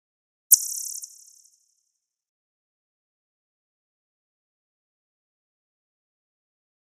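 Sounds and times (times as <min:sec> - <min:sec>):
electronic chirp with reverb: 0:00.5 - 0:01.6.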